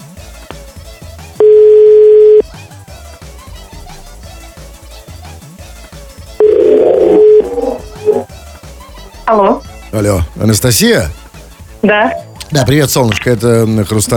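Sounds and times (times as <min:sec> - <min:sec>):
telephone ringback tones from a call to a landline phone: 0:01.4 - 0:02.4, 0:06.4 - 0:08.3
crackling noise: 0:06.4 - 0:08.3
speech: 0:09.3 - 0:11.2, 0:11.8 - 0:14.1.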